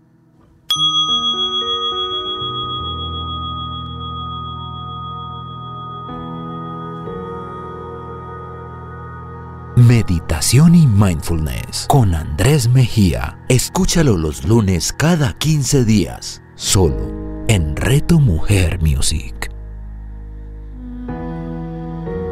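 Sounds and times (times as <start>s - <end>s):
meditation bell ringing: 0.7s - 9.2s
speech: 10.1s - 19.4s.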